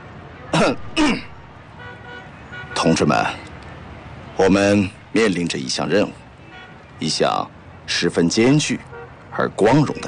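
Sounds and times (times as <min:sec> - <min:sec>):
speech: 0:00.6 - 0:01.2, 0:02.8 - 0:03.5, 0:04.4 - 0:06.2, 0:07.0 - 0:10.0
light throaty coughs: 0:00.6 - 0:01.3.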